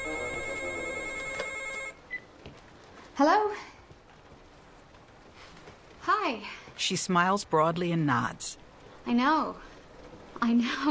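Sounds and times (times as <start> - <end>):
telephone bell ringing in a bright tonal trill: 0.0 - 2.0
short faint tone: 0.0 - 2.2
speech: 3.2 - 3.8, 6.2 - 9.7, 10.4 - 10.8.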